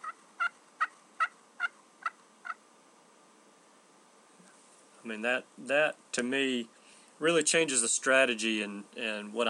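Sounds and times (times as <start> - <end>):
wild turkey gobbling: 0.0 - 2.6
speech: 5.1 - 9.4.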